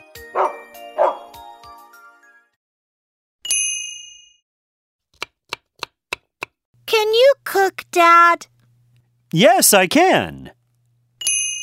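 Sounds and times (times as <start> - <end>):
dog barking: 0.3 - 1.3
speech: 7.6 - 8.5, 9.3 - 10.6
bright ringing ding: 11.2 - 11.6.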